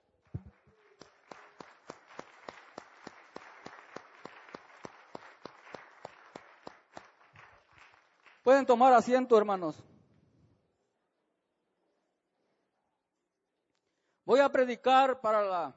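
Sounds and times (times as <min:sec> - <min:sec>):
audience applauding: 0:00.3 - 0:09.0
speech: 0:08.5 - 0:09.9, 0:14.6 - 0:15.7.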